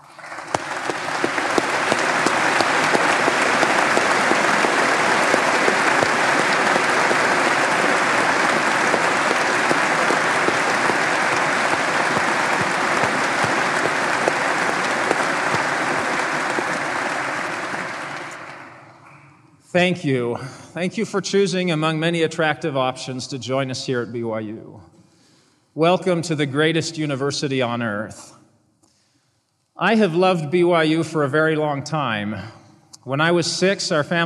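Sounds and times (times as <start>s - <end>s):
large crowd applauding new faculty members: 0.0s - 19.0s
speech: 19.8s - 24.9s, 25.8s - 28.4s, 29.8s - 34.2s.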